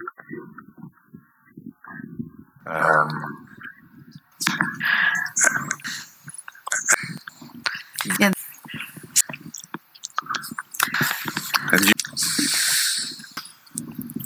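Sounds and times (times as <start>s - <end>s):
bursts of breath: 2.7s - 3.5s, 4.4s - 14.2s
mouth clicks: 2.7s - 14.2s.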